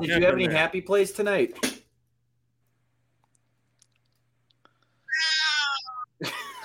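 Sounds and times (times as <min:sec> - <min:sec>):
speech: 0:00.0 - 0:01.8
pet cat meowing: 0:05.1 - 0:06.0.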